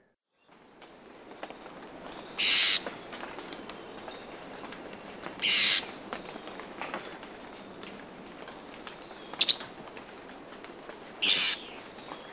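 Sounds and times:
Esmeraldas antbird giving harsh buzzy calls in Ecuador: 2.4s - 2.9s, 5.4s - 6.0s, 9.4s - 9.6s, 11.2s - 11.8s.

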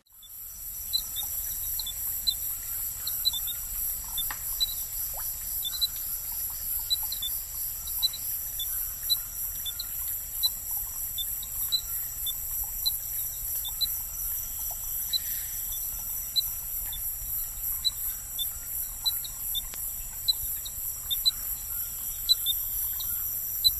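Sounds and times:
high insect buzzing: 0.0s - 23.7s
Dendrophryniscus minutus chirping calls in the Ecuadorian Amazon: 0.1s - 23.7s.

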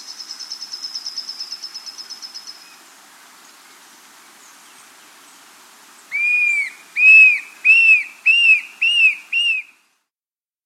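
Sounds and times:
tufted antshrike giving loud clear arched whistles in South America: 6.1s - 9.7s.

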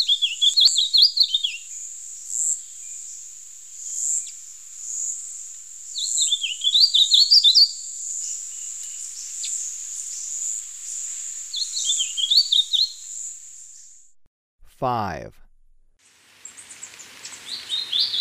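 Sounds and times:
steady high insect whine in Ecuador: 0.0s - 14.0s
Brown-capped vireo singing warbled phrases in Ecuador: 14.6s - 15.5s
speech: 14.8s - 15.4s.

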